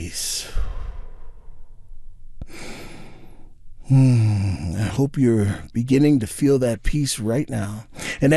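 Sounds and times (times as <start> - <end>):
deep breath in and out: 0.4 - 4.4, 7.9 - 8.2
speech: 3.9 - 8.3.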